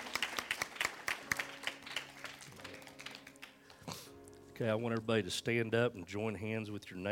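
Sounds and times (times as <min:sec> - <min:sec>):
church audience applauding indoors: 0:00.0 - 0:03.9
speech: 0:04.6 - 0:07.0.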